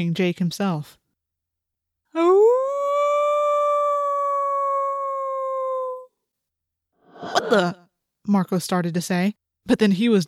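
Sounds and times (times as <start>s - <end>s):
speech: 0.0s - 1.0s, 7.4s - 10.2s
wolf howling: 2.2s - 6.0s.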